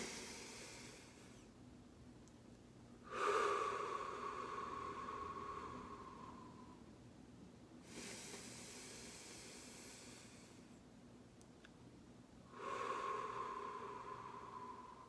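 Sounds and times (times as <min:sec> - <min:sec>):
person breathing in through the nose and out through the mouth: 0:00.0 - 0:01.5, 0:03.0 - 0:06.9, 0:07.8 - 0:10.8, 0:12.4 - 0:15.0.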